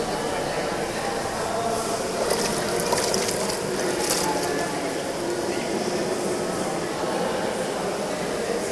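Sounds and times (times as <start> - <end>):
echoing water in a thermal bathhouse: 0.0 - 7.0
murmuring voices in a thermal bathhouse: 0.0 - 8.6
water splashes: 1.8 - 5.7.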